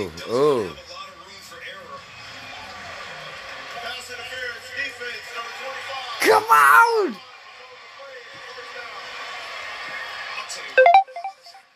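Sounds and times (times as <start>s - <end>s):
speech: 0.0s - 0.9s, 6.5s - 7.3s
crowd noise and chatter: 0.0s - 6.3s, 6.9s - 11.6s
phone ringtone melody of bright tones: 10.8s - 11.6s.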